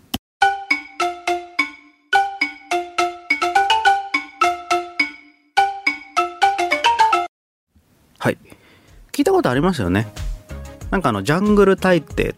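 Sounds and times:
balafon melody with wooden mallet strikes: 0.4s - 7.3s
speech: 8.2s - 8.6s, 9.2s - 10.3s, 10.9s - 12.3s.

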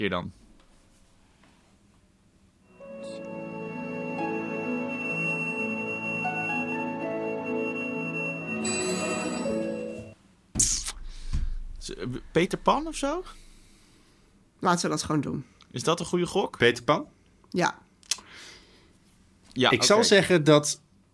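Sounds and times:
speech: 0.0s - 0.4s, 11.9s - 13.4s, 14.6s - 17.8s, 19.6s - 20.8s
orchestral film score music: 2.8s - 10.2s.

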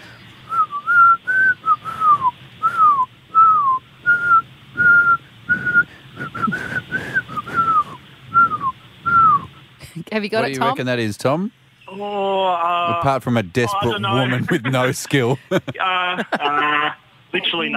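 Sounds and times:
woman whistling a song tune: 0.5s - 9.5s
speech: 10.2s - 17.7s
laughter: 13.8s - 17.0s.

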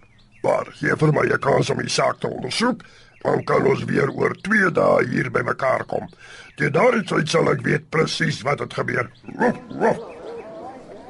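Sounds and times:
speech: 0.4s - 10.1s
gruff dog woofs: 9.3s - 11.0s.

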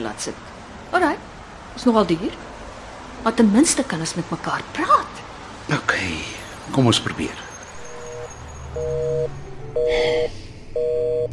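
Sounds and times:
speech: 0.0s - 2.5s, 3.2s - 7.5s
telephone busy signal tone: 7.9s - 11.3s.

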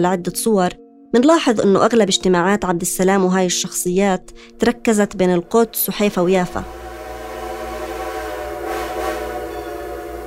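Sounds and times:
speech: 0.0s - 6.8s
train rumbling along the rails: 5.7s - 10.2s
faint whistle: 7.0s - 10.2s.

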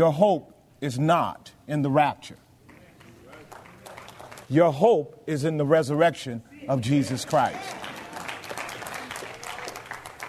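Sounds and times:
speech: 0.0s - 2.4s, 4.5s - 7.8s
audience applause at a sermon: 3.0s - 4.5s, 7.1s - 10.2s.

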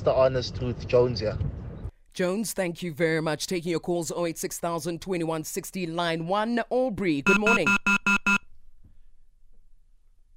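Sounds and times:
speech: 0.0s - 1.6s, 2.2s - 8.0s
electronic beeps from a dropped phone line: 7.2s - 8.4s.

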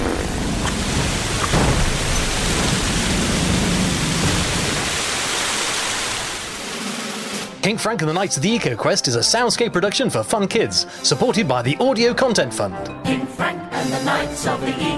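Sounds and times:
explosive gush of erupting water: 0.2s - 7.6s
speech: 7.7s - 14.9s.

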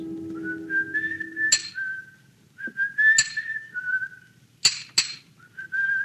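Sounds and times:
low rumble: 0.0s - 2.0s
sharp ringing hammer blows on stone: 0.0s - 2.0s, 3.2s - 3.6s
person whistling a cheery tune: 0.0s - 4.3s, 5.4s - 6.0s.

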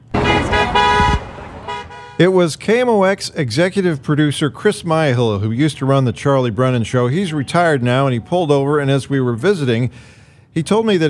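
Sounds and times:
car horn honking: 0.0s - 2.4s
road noise while driving: 0.0s - 11.0s
speech: 2.2s - 11.0s.

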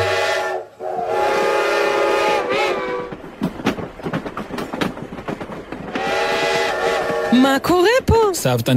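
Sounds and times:
train horn: 0.0s - 3.1s, 5.9s - 7.6s
train wheels clattering over rail joints: 1.3s - 8.4s
speech: 7.4s - 8.7s.

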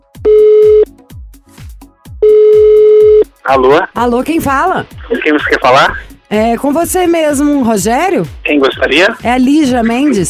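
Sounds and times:
phone call ringing tone: 0.2s - 0.9s, 2.2s - 3.3s
speech: 3.5s - 10.2s.

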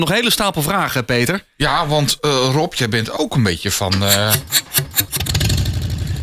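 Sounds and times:
speech: 0.0s - 5.0s
police motorcycle engine cranking: 3.9s - 6.2s.

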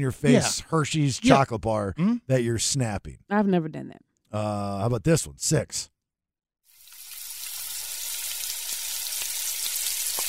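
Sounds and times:
speech: 0.0s - 5.9s
French fries sizzling in hot oil: 6.7s - 10.2s.

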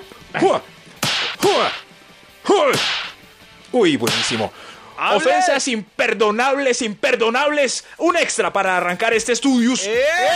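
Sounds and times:
speech: 0.3s - 0.8s, 1.4s - 1.8s, 2.5s - 3.0s, 3.7s - 10.3s
slap sound effect smacks with whooshing swing: 1.0s - 1.8s, 2.7s - 3.3s, 4.0s - 4.5s.

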